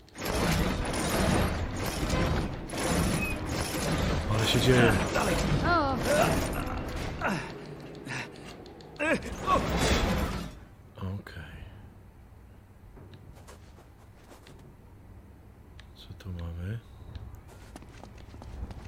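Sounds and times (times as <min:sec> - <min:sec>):
door creaking open with squealing hinges: 0:00.0 - 0:08.1
speech: 0:04.5 - 0:06.6, 0:09.1 - 0:10.1.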